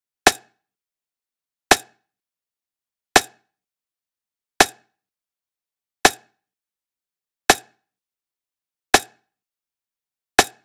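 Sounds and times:
manual lo-fi drum loop with rim clicks: 0:00.3 - 0:00.5, 0:01.7 - 0:01.9, 0:03.2 - 0:03.4, 0:10.4 - 0:10.6.

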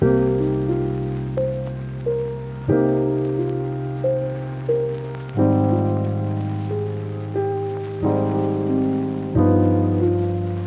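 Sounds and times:
lofi melody loop in C minor at 90 BPM: 0:00.0 - 0:10.6.

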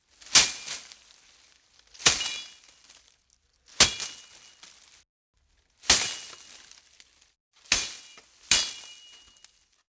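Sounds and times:
machete bush whacks ringing: 0:00.2 - 0:01.0, 0:02.0 - 0:02.6, 0:03.8 - 0:04.3, 0:05.9 - 0:06.6.

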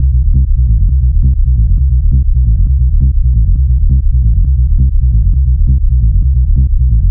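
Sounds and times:
techno bass loop in C at 135 BPM: 0:00.0 - 0:07.0.

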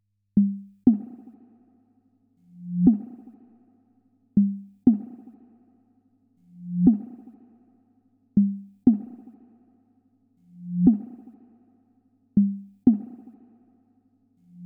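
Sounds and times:
percussion loop in F minor: 0:00.4 - 0:01.3, 0:04.4 - 0:05.3, 0:08.4 - 0:09.3, 0:12.4 - 0:13.3.

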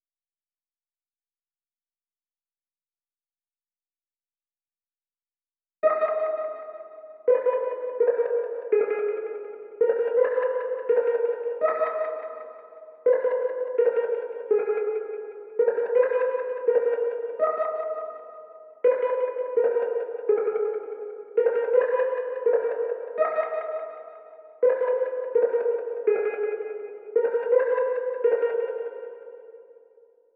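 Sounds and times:
166 BPM G# minor atmospheric melody loop: 0:05.8 - 0:30.0.

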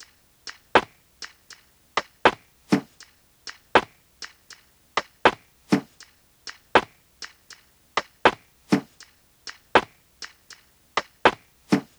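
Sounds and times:
top drum loop at 80 BPM: 0:02.0 - 0:04.4, 0:05.0 - 0:11.9.

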